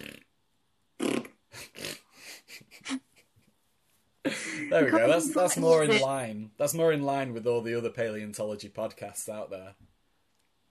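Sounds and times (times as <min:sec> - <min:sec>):
person imitating fart noises with wet blown raspberries: 0:00.0 - 0:02.4
speech: 0:04.6 - 0:09.9.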